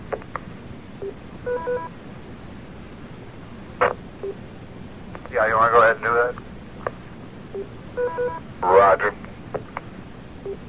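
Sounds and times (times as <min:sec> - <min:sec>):
DTMF touch-tone dialing beeps for a radio phone patch: 0:01.5 - 0:01.9, 0:07.6 - 0:08.4
speech: 0:05.4 - 0:06.5
hissy band-limited radio channel: 0:08.6 - 0:09.2.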